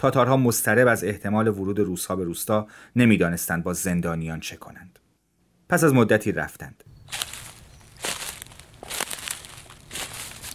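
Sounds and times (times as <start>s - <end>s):
speech: 0.0s - 5.0s, 5.7s - 7.3s
dry leaves rustling and crunching: 7.0s - 10.5s.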